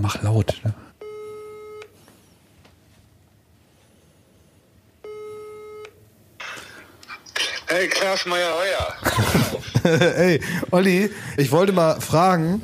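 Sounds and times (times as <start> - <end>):
speech: 0.0 - 0.8, 7.8 - 12.6
telephone ringing tone while placing a call: 5.0 - 5.9
laughter: 8.9 - 11.1.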